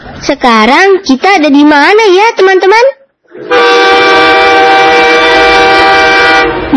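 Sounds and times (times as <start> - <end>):
speech: 0.3 - 4.4
train horn blaring at a railway station: 3.4 - 6.7.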